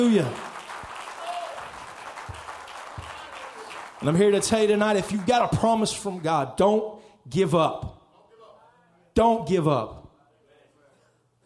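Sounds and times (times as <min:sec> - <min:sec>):
speech: 0:00.0 - 0:00.4, 0:04.0 - 0:07.9, 0:09.2 - 0:10.0
audience clapping hands in praise: 0:00.0 - 0:06.3.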